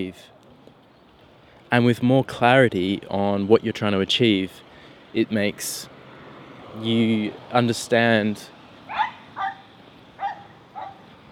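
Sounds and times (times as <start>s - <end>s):
speech: 0.0s - 0.4s, 1.7s - 5.9s, 6.8s - 9.0s
small dogs yapping: 8.9s - 11.1s.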